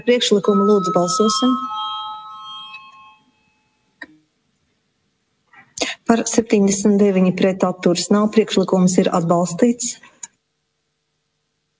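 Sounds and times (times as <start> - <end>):
speech: 0.0 - 1.7, 6.1 - 10.1
voting bell ringing in a parliament chamber: 0.0 - 4.0.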